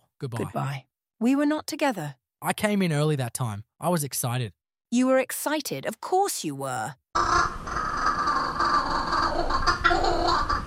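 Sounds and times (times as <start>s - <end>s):
speech: 0.2s - 7.6s
kookaburra raucous laughing call: 7.2s - 10.6s.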